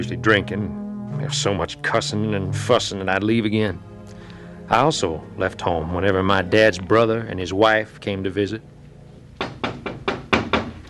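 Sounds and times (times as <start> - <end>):
speech: 0.0 - 3.9, 4.7 - 8.7
knocking on a home's front door: 9.4 - 10.8.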